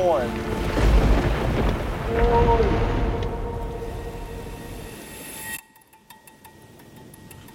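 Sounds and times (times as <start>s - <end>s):
speech: 0.0s - 0.7s
deep rolling thunder during a lightning storm at sea in the Solomon Islands: 0.0s - 5.1s
steady stormy roar during a lightning storm at sea: 0.3s - 4.8s.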